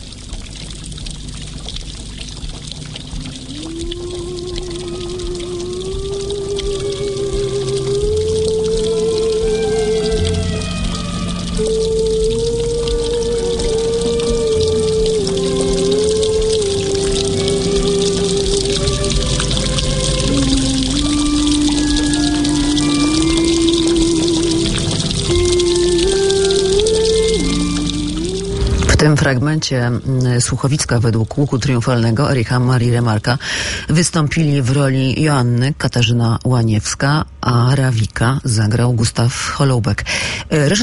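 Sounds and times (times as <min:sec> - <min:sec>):
steady dense rain hissing: 0:00.0 - 0:34.2
sustained wavering musical tone: 0:03.7 - 0:29.1
speech: 0:29.2 - 0:40.8.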